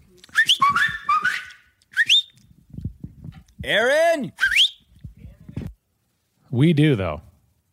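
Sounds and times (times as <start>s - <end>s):
loud human whistle calling a person: 0.3s - 2.4s, 4.4s - 4.8s
speech: 3.6s - 4.4s, 6.5s - 7.3s.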